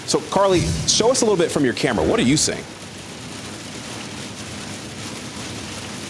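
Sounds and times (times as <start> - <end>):
heavy rain pelting down on a vehicle on Highway 1: 0.0 - 6.0
speech: 0.1 - 2.8
low rumble: 0.4 - 2.9.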